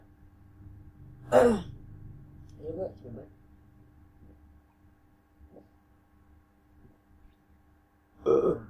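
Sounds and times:
speech: 1.3 - 1.7, 2.7 - 3.4
loud burps against the microphone in an ASMR recording: 1.3 - 1.8, 8.2 - 8.6.

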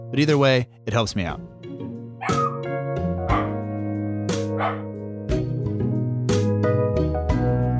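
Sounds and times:
music: 0.0 - 7.7
speech: 0.1 - 1.5, 4.6 - 4.9
dog barking: 2.2 - 2.6, 3.3 - 3.6, 4.5 - 4.9.

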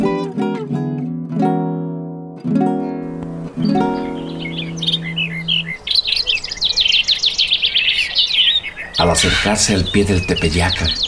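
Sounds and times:
sustained tone-like musical notes: 0.0 - 5.8
dense chorus of birds twittering and chirping: 2.8 - 11.0
speech: 9.1 - 11.0.

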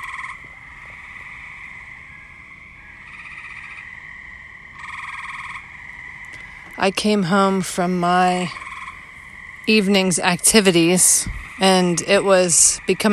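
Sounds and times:
chorus of frogs or toads croaking and trilling in a backyard at dusk: 0.0 - 13.1
speech: 6.8 - 8.6, 9.7 - 13.1.

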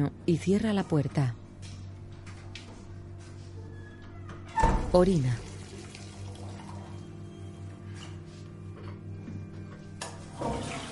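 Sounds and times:
speech: 0.0 - 1.4, 4.9 - 5.4
water running at a bathroom sink: 5.2 - 7.1, 10.3 - 10.9.

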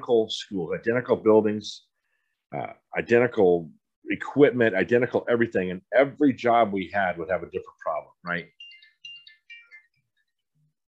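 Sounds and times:
speech: 0.0 - 1.9, 2.5 - 8.6
phone ringtone with bright electronic melody of chirping tones: 8.5 - 10.7.

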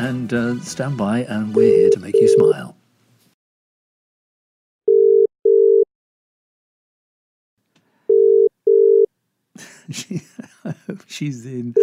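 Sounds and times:
speech: 0.0 - 2.8, 9.9 - 11.8
telephone ringback tone as a call is placed: 1.6 - 2.6, 4.9 - 5.9, 8.1 - 9.1
laughter: 9.6 - 11.8.

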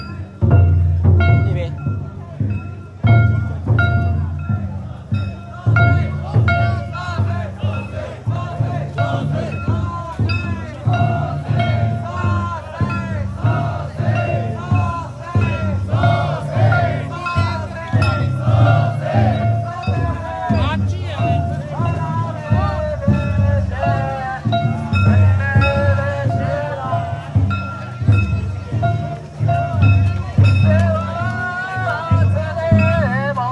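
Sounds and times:
crowd shouting and chanting at a village Shinto festival: 0.0 - 33.5
deep steady pounding at a village Shinto festival: 0.0 - 33.5.

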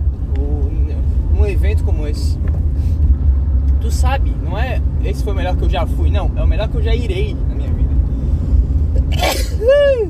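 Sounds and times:
low rumble: 0.0 - 10.0
speech: 1.7 - 2.6, 3.8 - 7.7, 9.1 - 10.0
sneeze: 9.1 - 9.6.

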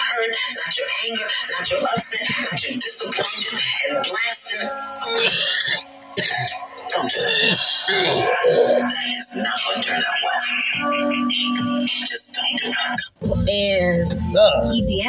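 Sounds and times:
speech: 0.2 - 15.0
harsh prolonged coughing fit with wheezing: 1.5 - 4.0, 5.2 - 9.1.

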